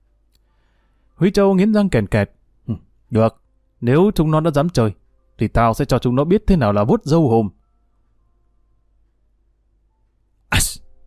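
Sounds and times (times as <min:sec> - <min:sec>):
speech: 0:01.2 - 0:07.6
man sneezing while eating a bowl of beef brisket pho: 0:10.5 - 0:10.8.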